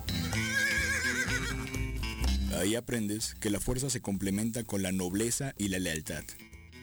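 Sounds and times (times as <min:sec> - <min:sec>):
horse whinnying: 0:00.0 - 0:01.8
steady full sound: 0:01.7 - 0:06.5
speech: 0:02.6 - 0:06.5.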